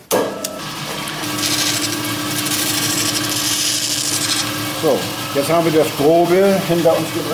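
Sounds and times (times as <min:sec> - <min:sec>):
constant motor hum: 0:00.4 - 0:07.3
sawn halves of a stone containing rock crystal being ground smooth: 0:01.2 - 0:04.6
speech: 0:04.8 - 0:07.3.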